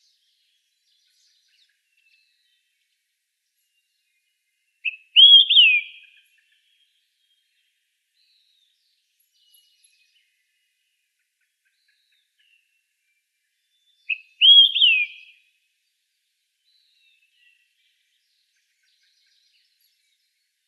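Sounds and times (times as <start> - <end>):
olive-sided flycatcher song: 4.9 - 6.1, 14.1 - 15.3.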